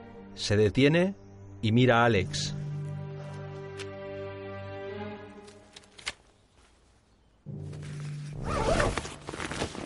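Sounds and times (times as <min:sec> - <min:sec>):
speech: 0:00.4 - 0:02.6
zipper being slowly opened: 0:08.0 - 0:09.8.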